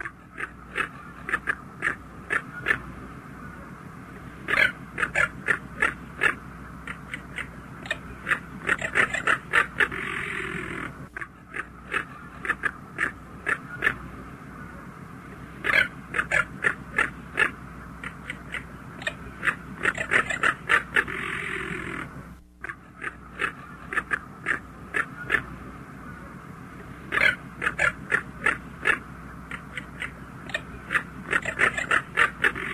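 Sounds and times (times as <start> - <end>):
crested caracara growling rattle call: 0.0 - 32.7.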